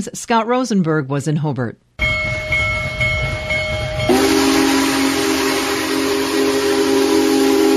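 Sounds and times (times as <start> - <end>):
speech: 0.0 - 1.9
Union Pacific 4014 Big Boy steam locomotive rumbling past in Hobart, Indiana: 2.0 - 7.7
Union Pacific 4014 Big Boy steam locomotive whistle: 3.8 - 7.7.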